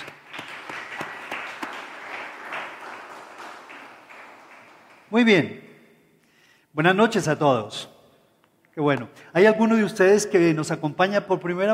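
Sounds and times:
audience applauding: 0:00.0 - 0:05.5
speech: 0:05.1 - 0:05.6, 0:06.8 - 0:07.9, 0:08.8 - 0:11.7.

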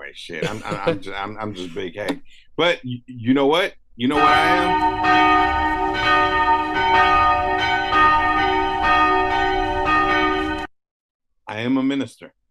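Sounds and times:
speech: 0:00.1 - 0:07.3, 0:11.6 - 0:12.4
laughter: 0:00.3 - 0:01.9
church bells ringing: 0:04.1 - 0:10.7.

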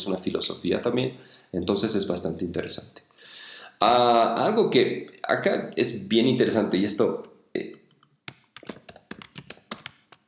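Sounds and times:
speech: 0:00.0 - 0:07.8
typing on a computer keyboard: 0:08.3 - 0:10.2.

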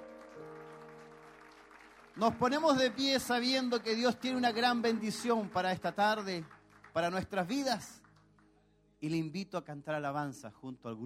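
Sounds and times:
crowd clapping: 0:00.0 - 0:08.6
speech: 0:02.2 - 0:08.0, 0:09.0 - 0:11.0.

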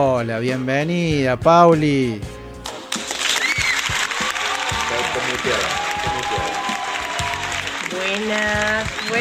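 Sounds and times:
speech: 0:00.0 - 0:02.3, 0:05.4 - 0:06.6, 0:07.9 - 0:09.1
dense applause from a small group: 0:02.9 - 0:09.1
voices talking and cheering: 0:03.4 - 0:09.1.

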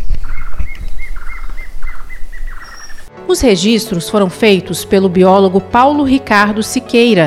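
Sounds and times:
plain antvireo singing: 0:00.0 - 0:03.1
speech: 0:03.3 - 0:07.2.

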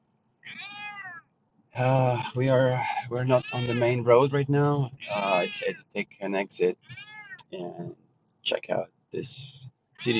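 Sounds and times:
cat meowing in complaint: 0:00.4 - 0:01.2, 0:02.2 - 0:04.0, 0:05.0 - 0:05.8, 0:06.8 - 0:07.5, 0:10.0 - 0:10.1
speech: 0:01.8 - 0:10.1.

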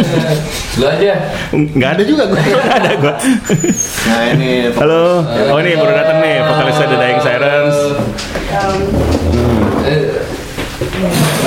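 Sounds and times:
laughter: 0:00.0 - 0:00.6, 0:01.4 - 0:05.8
speech: 0:00.1 - 0:09.2
tables and chairs being shifted and tidied at a radio station: 0:08.0 - 0:11.4.

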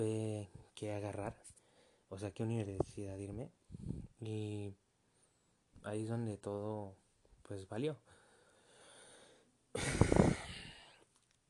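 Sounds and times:
speech: 0:00.0 - 0:04.8, 0:05.8 - 0:08.2, 0:09.8 - 0:10.0
breathy exhale blown into the microphone: 0:03.7 - 0:04.2, 0:09.8 - 0:11.0.

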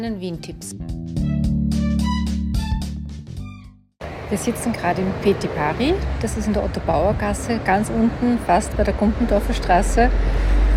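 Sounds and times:
speech: 0:00.0 - 0:01.8, 0:04.3 - 0:10.6
low engine rumble from a bus passing on the street: 0:04.0 - 0:10.7.

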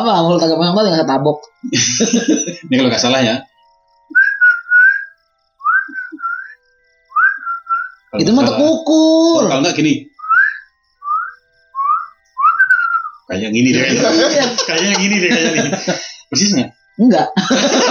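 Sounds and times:
speech: 0:00.0 - 0:03.5, 0:08.1 - 0:10.1, 0:13.3 - 0:17.8
laughter: 0:01.6 - 0:02.9, 0:13.6 - 0:16.7, 0:17.4 - 0:17.8
person whistling imitation of kedasih cuckoo call: 0:03.4 - 0:08.4, 0:10.1 - 0:15.7.

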